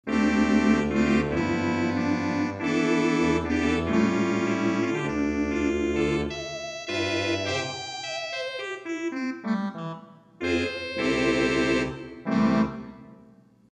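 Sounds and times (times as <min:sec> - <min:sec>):
theatre organ with 8' Tibia and 8' Trumpet stops: 0:00.1 - 0:13.3.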